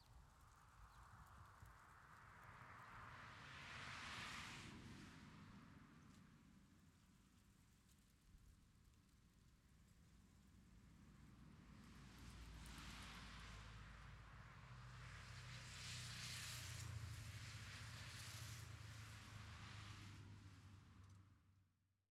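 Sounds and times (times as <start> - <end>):
cars on a road at a disused sawmill in Châtenois: 0.4 - 21.6.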